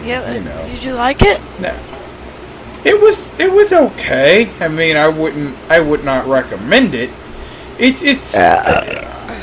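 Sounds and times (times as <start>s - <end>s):
speech: 0.0s - 2.0s, 2.8s - 7.2s, 7.8s - 9.2s
burp: 8.4s - 9.4s.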